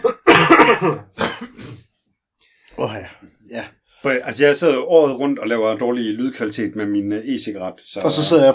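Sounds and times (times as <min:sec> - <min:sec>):
person coughing from a summer allergy: 0:00.0 - 0:01.8
speech: 0:00.8 - 0:01.6, 0:02.8 - 0:08.5.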